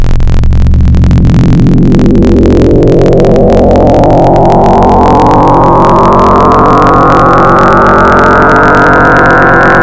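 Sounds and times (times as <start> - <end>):
synthesizer sine wavetable tone with modulation: 0.2 - 9.8.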